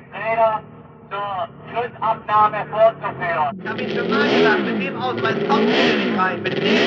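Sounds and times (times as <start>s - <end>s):
man speaking: 0.0s - 6.6s
racing motorcycle engines roaring past on the Solitude racetrack near Stuttgart: 2.8s - 6.8s.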